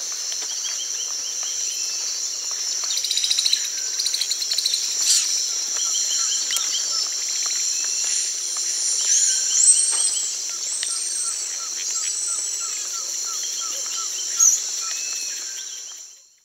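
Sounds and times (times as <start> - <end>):
constant loud insect drone in Brazilian rainforest: 0.0 - 16.4
Brazilian bare-faced tamarin whistling calls in rainforest in Brazil: 4.7 - 15.7.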